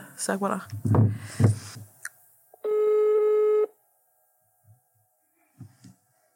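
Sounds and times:
soft handling thumps and rustles: 0:00.7 - 0:02.0
phone call ringing tone: 0:02.6 - 0:03.7.

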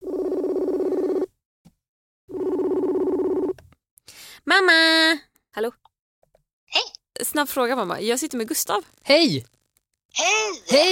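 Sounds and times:
steady buzzing phone ringback tone of an outgoing call: 0:00.0 - 0:01.3, 0:02.3 - 0:03.6
speech: 0:04.5 - 0:05.8, 0:07.3 - 0:09.6, 0:10.2 - 0:10.9.

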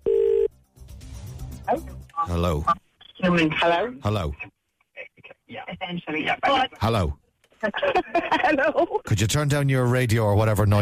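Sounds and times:
telephone ringing tone: 0:00.0 - 0:00.5
speech: 0:01.7 - 0:04.5, 0:05.9 - 0:10.8.

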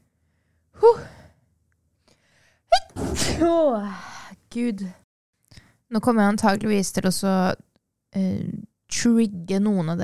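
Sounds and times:
person sneezing: 0:02.8 - 0:03.6
speech: 0:03.4 - 0:05.0, 0:05.9 - 0:10.0.

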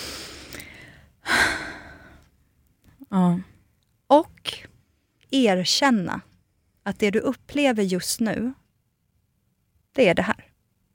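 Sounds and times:
person breathing deeply: 0:00.0 - 0:02.3
speech: 0:05.3 - 0:06.3, 0:06.9 - 0:08.6, 0:10.0 - 0:10.4.

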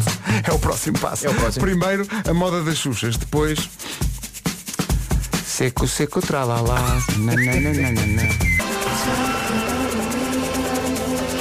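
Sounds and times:
upbeat pop backing track: 0:00.0 - 0:11.3
speech: 0:00.4 - 0:04.0, 0:05.6 - 0:09.2
bright whistled melody in a pop song: 0:01.3 - 0:02.1, 0:06.8 - 0:10.2.

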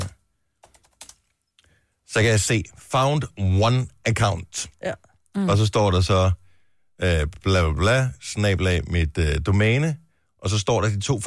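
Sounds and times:
keyboard typing an email address: 0:00.0 - 0:01.4
speech: 0:02.1 - 0:06.4, 0:07.0 - 0:11.2.

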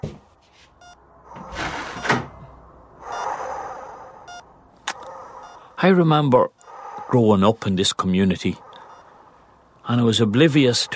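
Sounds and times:
door swinging with a brief scraping rush: 0:01.3 - 0:02.6
speech: 0:05.8 - 0:08.6, 0:09.9 - 0:10.9.

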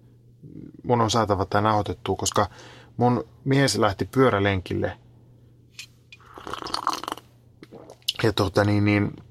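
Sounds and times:
low steady hum: 0:00.0 - 0:09.2
speech: 0:00.5 - 0:05.0, 0:08.2 - 0:09.2
slurping a drink: 0:06.2 - 0:08.2.

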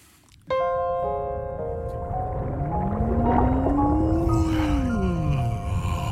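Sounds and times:
constant underwater rumble: 0:01.3 - 0:06.1
steady droning hum: 0:01.5 - 0:06.1
whale's drawn-out low moaning call: 0:02.1 - 0:06.1.

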